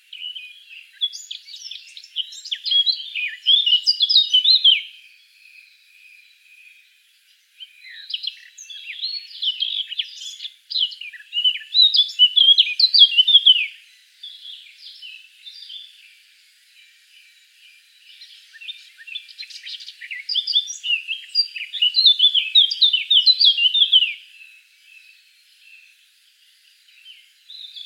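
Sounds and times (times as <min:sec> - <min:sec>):
Eurasian blackcap Sylvia atricapilla warbling song: 0:00.0 - 0:05.0, 0:07.6 - 0:16.2, 0:17.3 - 0:25.9.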